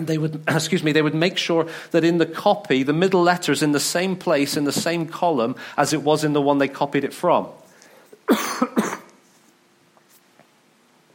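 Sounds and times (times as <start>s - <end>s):
speech: 0.0s - 7.6s, 8.3s - 9.0s
person coughing: 8.2s - 9.2s.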